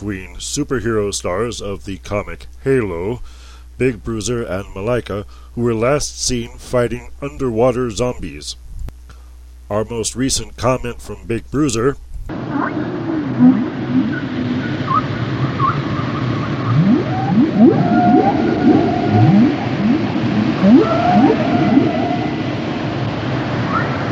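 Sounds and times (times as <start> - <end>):
speech: 0.0 - 8.6, 9.7 - 13.5
constant low underwater rumble: 12.2 - 24.1
whale calls underwater: 12.3 - 24.1.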